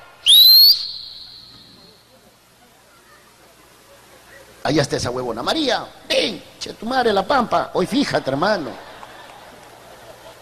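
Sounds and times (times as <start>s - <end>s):
loud sharp whistle by a young man on a street corner: 0.2s - 1.9s
speech: 4.6s - 8.8s
laughter: 7.9s - 10.4s.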